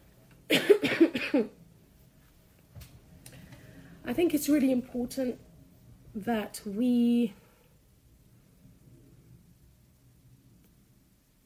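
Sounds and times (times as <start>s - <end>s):
harsh coughs: 0.5s - 1.6s
speech: 1.4s - 1.6s, 4.1s - 5.5s, 6.1s - 7.4s.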